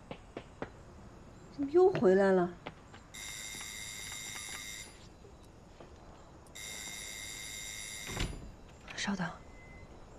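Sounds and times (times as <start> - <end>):
speech: 1.6 - 2.6, 9.1 - 9.4
phone electronic ringtone for an incoming call: 3.2 - 5.0, 6.6 - 8.2.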